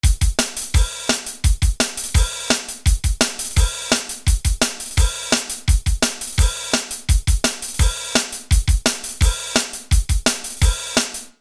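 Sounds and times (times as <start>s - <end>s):
punk music: 0.0s - 11.3s.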